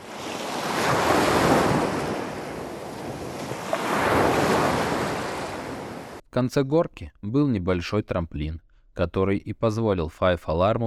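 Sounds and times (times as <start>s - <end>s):
heavy sea waves: 0.0s - 6.2s
icy stormy wind roaring: 0.0s - 6.2s
speech: 6.4s - 10.8s.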